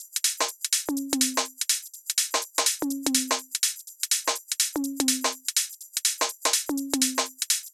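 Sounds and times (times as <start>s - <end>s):
percussion drum loop: 0.0s - 7.7s.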